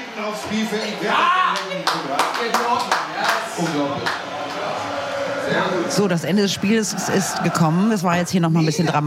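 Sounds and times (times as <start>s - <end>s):
crowd noise: 0.0s - 9.0s
murmuring voices: 0.0s - 9.0s
speech: 0.2s - 4.4s, 5.5s - 9.0s
single football fan clapping: 1.5s - 4.6s.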